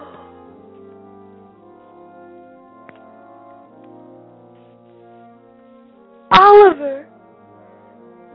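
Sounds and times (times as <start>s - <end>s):
long human yawn with a big stretch: 6.3s - 6.7s.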